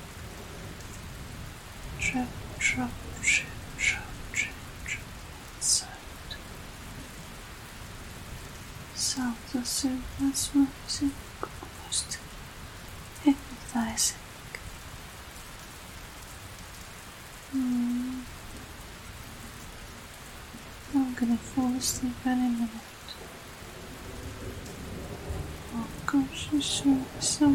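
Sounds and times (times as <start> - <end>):
steady rain on a hard surface: 0.0 - 27.5
speech: 2.1 - 3.5, 9.2 - 11.7, 13.2 - 14.2, 21.2 - 22.9, 26.4 - 27.5.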